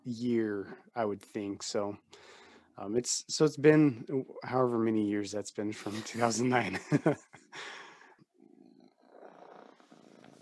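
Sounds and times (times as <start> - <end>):
speech: 0.0 - 7.8
cat purring with a low rumbling drone: 8.4 - 10.4.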